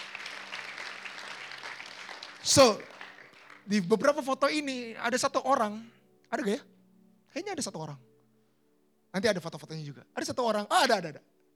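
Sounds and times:
audience applauding in praise of Jesus: 0:00.0 - 0:04.3
speech: 0:02.4 - 0:02.9, 0:03.7 - 0:06.7, 0:07.3 - 0:08.1, 0:09.1 - 0:11.3.

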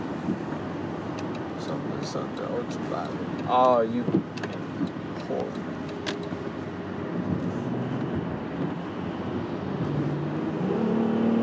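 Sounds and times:
car driving on road with engine hum and tire noise: 0:00.0 - 0:11.4
speech: 0:02.0 - 0:05.7.

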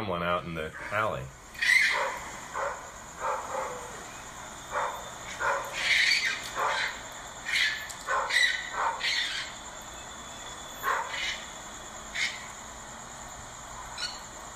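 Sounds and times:
speech: 0:00.0 - 0:01.7
faint steady hiss: 0:00.0 - 0:14.5
excited hound barking and yelping: 0:01.6 - 0:09.6, 0:10.8 - 0:12.5.

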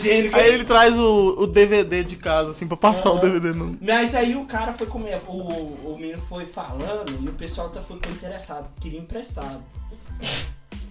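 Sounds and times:
speech: 0:00.0 - 0:10.8
person sneezing: 0:10.0 - 0:10.8.

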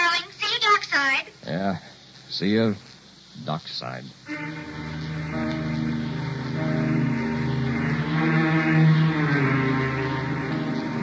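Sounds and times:
speech: 0:01.6 - 0:05.4
motor launch engine droning through rough waves: 0:04.3 - 0:11.0.

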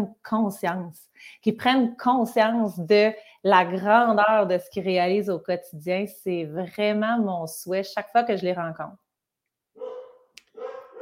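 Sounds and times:
speech: 0:00.0 - 0:09.0
dog barking excitedly: 0:09.8 - 0:10.9.

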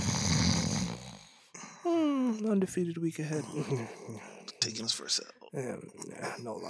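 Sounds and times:
loud rumbling snore: 0:00.0 - 0:01.4
speech: 0:01.8 - 0:06.6.

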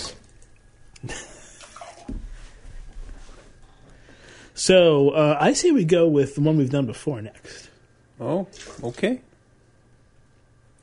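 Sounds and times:
speech: 0:04.6 - 0:07.6, 0:08.2 - 0:09.3
water running and splashing as beer glasses are rinsed: 0:08.5 - 0:09.0.

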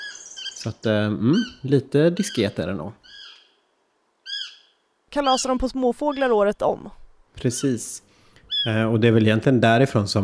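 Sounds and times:
Eurasian sparrowhawk calling: 0:00.0 - 0:00.7, 0:01.3 - 0:03.6, 0:04.2 - 0:06.7, 0:08.4 - 0:08.9
speech: 0:00.6 - 0:03.2, 0:05.1 - 0:10.2.

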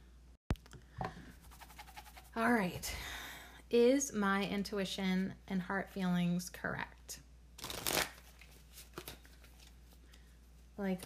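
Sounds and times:
speech: 0:02.4 - 0:07.2, 0:10.8 - 0:11.0
tarot cards being shuffled: 0:07.6 - 0:10.0.

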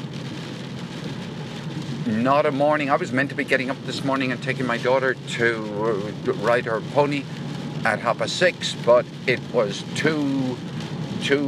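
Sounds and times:
heavy rain pouring down in Cork: 0:00.0 - 0:11.4
speech: 0:02.1 - 0:11.4.

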